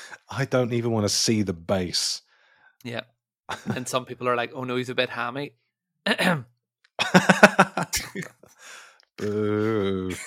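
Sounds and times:
speech: 0:00.3 - 0:02.2, 0:02.8 - 0:06.5, 0:07.1 - 0:10.2
rasping breath: 0:02.3 - 0:02.8, 0:08.5 - 0:09.9
laughter: 0:03.5 - 0:04.0, 0:07.0 - 0:08.5, 0:09.2 - 0:10.2
person clearing throat: 0:06.1 - 0:06.5, 0:09.2 - 0:10.2
brief vocal sound: 0:09.2 - 0:10.1.

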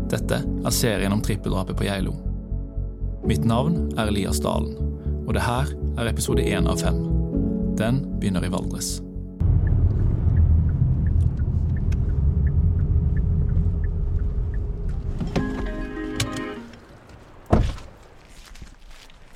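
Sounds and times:
speech: 0:00.1 - 0:02.3, 0:03.2 - 0:07.2, 0:07.8 - 0:09.1
sharp thump: 0:09.4 - 0:12.6
vehicle's rising engine whine: 0:09.4 - 0:18.0
traffic rushing past on the E16 highway beside a small farm in Bagn: 0:09.4 - 0:18.1.

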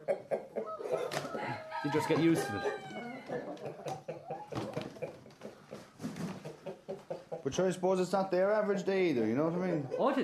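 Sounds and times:
hens clucking: 0:00.0 - 0:07.6
rooster calling: 0:00.6 - 0:03.4
speech: 0:01.8 - 0:02.8, 0:07.5 - 0:10.2.

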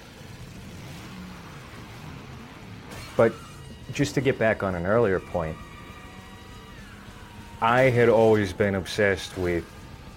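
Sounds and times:
car engine revving: 0:00.0 - 0:10.1
speech: 0:03.2 - 0:05.7, 0:07.6 - 0:09.8.

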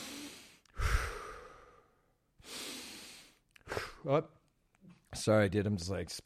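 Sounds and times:
person breathing in through nose and out through mouth: 0:00.0 - 0:04.0
speech: 0:04.0 - 0:06.2.

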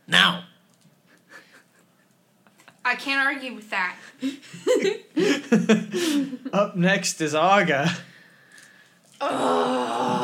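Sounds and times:
speech: 0:02.9 - 0:08.1
person groaning during a fantasy role-playing game: 0:09.2 - 0:10.2.

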